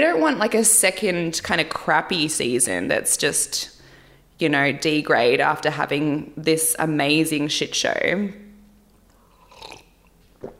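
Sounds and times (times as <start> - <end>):
speech: 0.0 - 3.7, 4.4 - 8.4
person gulping a sip of coffee: 9.1 - 10.5.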